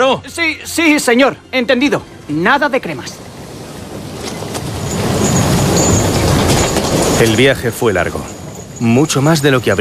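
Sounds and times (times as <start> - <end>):
speech: 0.0 - 3.3, 7.2 - 9.8
old train clattering along the rails: 1.7 - 9.8
faint metallic squeals: 4.2 - 9.8.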